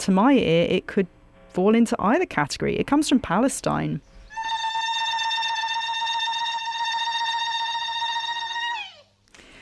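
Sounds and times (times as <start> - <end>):
speech: 0.0 - 4.1
high-pitched vocal ululation: 4.3 - 9.2.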